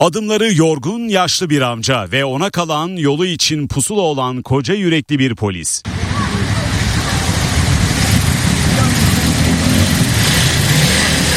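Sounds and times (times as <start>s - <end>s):
speech: 0.0s - 6.2s
indistinct voices: 5.8s - 11.3s
road noise of busy street traffic: 5.8s - 11.3s
engines droning: 5.9s - 11.3s.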